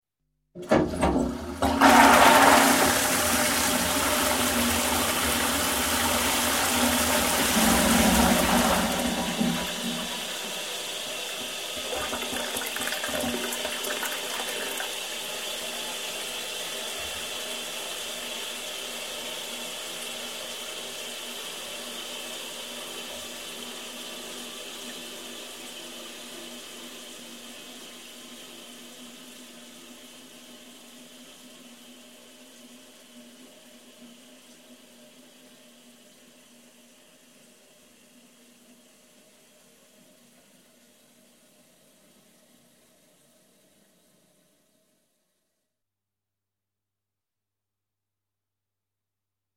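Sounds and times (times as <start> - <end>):
toilet flushing: 0.6 - 36.5.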